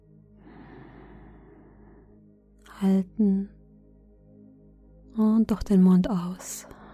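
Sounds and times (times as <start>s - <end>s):
slow soft inhale through the nose during a guided breathing meditation: 0.4s - 2.2s
speech: 2.8s - 3.6s, 5.2s - 6.8s.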